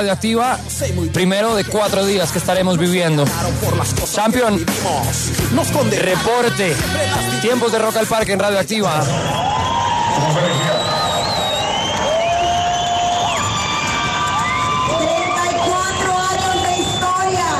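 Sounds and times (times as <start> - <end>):
speech: 0.0 - 9.4, 10.2 - 10.9
large crowd of symphonic metal fans cheering and shouting at a rock festival: 5.8 - 17.5.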